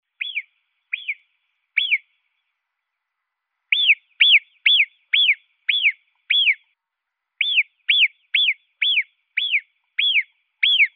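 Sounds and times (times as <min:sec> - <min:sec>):
marmot giving high whistles: 0:00.2 - 0:01.2, 0:01.8 - 0:02.1, 0:03.7 - 0:06.7, 0:07.4 - 0:10.9.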